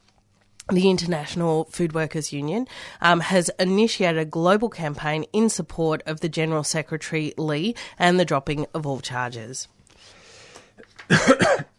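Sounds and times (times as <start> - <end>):
speech: 0.7 - 9.8, 11.0 - 11.6
person clearing throat: 11.1 - 11.7.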